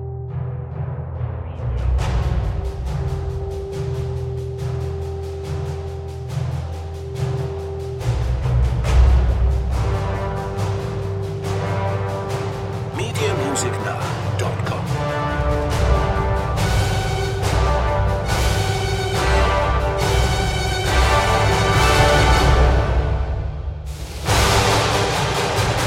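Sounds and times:
brass percussion: 0.3s - 25.8s.

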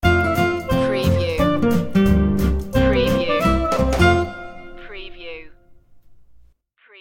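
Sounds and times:
swing music sting: 0.0s - 4.7s.

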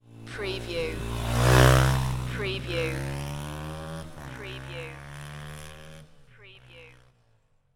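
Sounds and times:
motorcycle dirt bike driving by: 0.0s - 7.6s.

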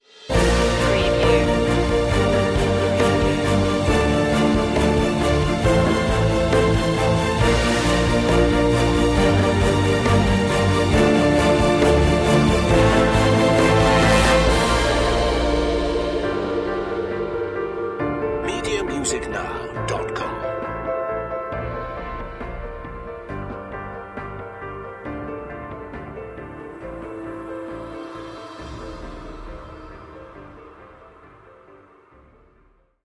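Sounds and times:
music without choir: 0.2s - 32.6s.

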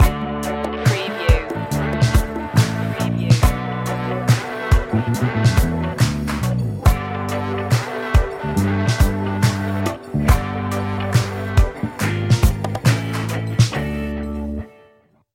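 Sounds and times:
smooth groove music: 0.0s - 15.0s.

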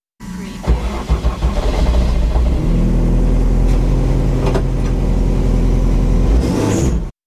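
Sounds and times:
rally car starting: 0.2s - 7.1s.

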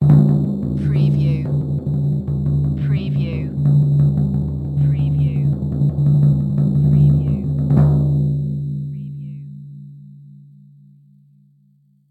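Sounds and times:
cartoon kick drum roll: 0.0s - 8.5s.

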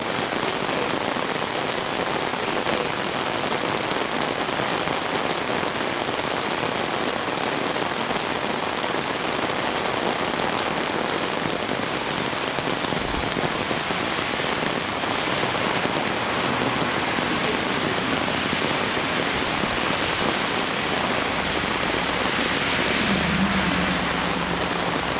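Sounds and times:
rain on an umbrella in Kyoto Japan: 0.0s - 25.1s
low traffic in Kyoto Japan: 9.5s - 25.1s.

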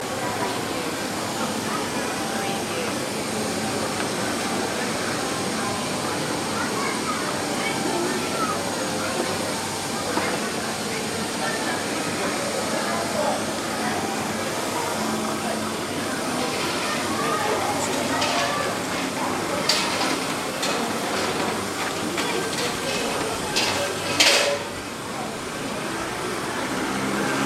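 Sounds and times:
busy Tokyo street market chatter: 0.0s - 27.4s
Tokyo city traffic: 18.4s - 27.4s.

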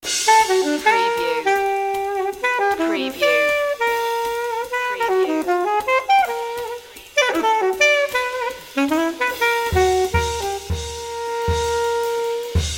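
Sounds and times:
alto voice leaps sting: 0.1s - 12.7s.

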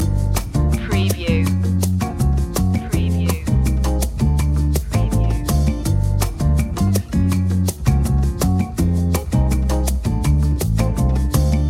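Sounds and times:
breezy night lounge music loop: 0.0s - 11.6s.

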